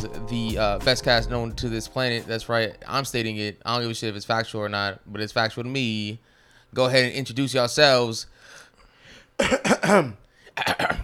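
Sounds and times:
speech: 0.0 - 8.6, 9.4 - 11.0
throat clearing: 9.4 - 11.0.

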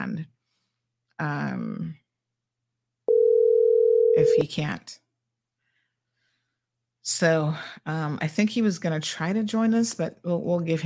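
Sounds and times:
speech: 1.2 - 2.0, 4.2 - 5.0, 7.1 - 10.8
telephone dial tone while a phone call is being placed: 3.1 - 4.5.

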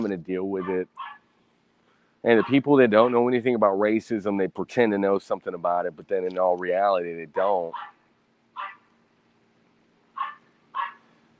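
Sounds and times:
speech: 0.0 - 1.2, 2.2 - 8.0
faint steady hum: 0.0 - 11.3
small dog giving sharp high-pitched barks: 0.6 - 1.2, 2.3 - 3.2, 7.7 - 8.0, 8.6 - 8.9, 10.2 - 11.0.

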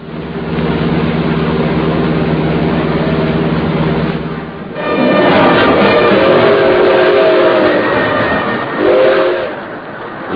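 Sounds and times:
freight train rumbling along the rails: 0.0 - 10.3
freight train horn blasts: 4.7 - 9.7.

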